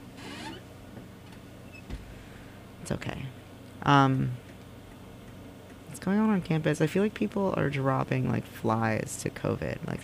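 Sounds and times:
chair creaking: 0.0s - 0.7s
speech: 2.9s - 4.4s, 6.0s - 10.0s.

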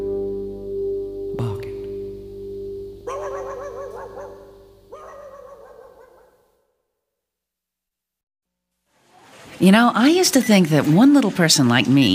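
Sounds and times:
steady low hum: 0.0s - 6.1s
dog barking: 3.1s - 6.5s
speech: 9.6s - 12.1s.

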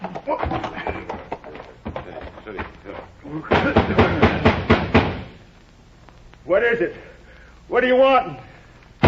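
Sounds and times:
speech: 0.3s - 0.7s, 2.5s - 4.6s, 6.5s - 7.1s, 7.7s - 8.5s
heavy pounding on a house door at night: 3.5s - 5.3s.

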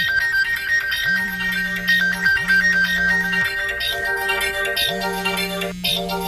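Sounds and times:
busy hum: 0.0s - 6.2s
phone ringtone playing a repeating electronic melody: 0.0s - 6.2s.

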